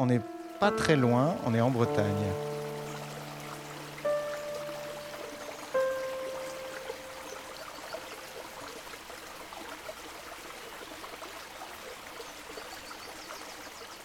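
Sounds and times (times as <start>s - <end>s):
speech: 0.0s - 2.5s
small splashes of river water: 0.0s - 11.3s
river trickling in Brittany: 0.0s - 14.0s.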